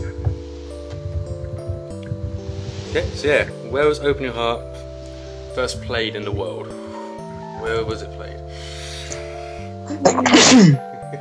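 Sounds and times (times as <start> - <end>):
speech: 2.9 - 4.8, 5.6 - 6.8, 7.6 - 8.7, 10.0 - 11.1
person sneezing: 9.9 - 10.8.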